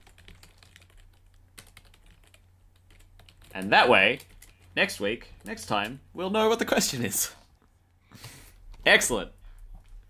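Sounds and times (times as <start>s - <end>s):
faint typing on a computer keyboard as notes are entered: 0.0s - 6.0s
speech: 3.6s - 7.4s, 8.1s - 9.4s.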